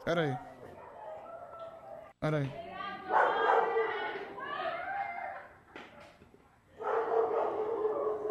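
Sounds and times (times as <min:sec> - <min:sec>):
speech: 0:00.0 - 0:00.5, 0:02.2 - 0:03.2
several dogs barking in a street: 0:00.2 - 0:02.2, 0:03.0 - 0:04.1, 0:06.8 - 0:08.2
women shouting in a street argument: 0:02.6 - 0:05.6.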